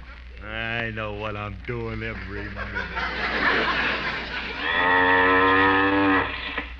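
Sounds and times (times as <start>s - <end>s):
faint hum: 0.0s - 6.7s
speech: 0.4s - 5.6s
laughter: 2.1s - 4.7s
cow mooing: 4.6s - 6.6s.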